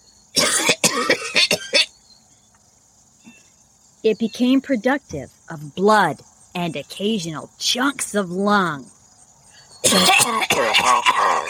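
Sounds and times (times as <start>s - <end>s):
person coughing hard with wet bursts: 0.4s - 1.9s, 9.8s - 11.4s
speech: 4.0s - 9.0s, 9.9s - 11.4s.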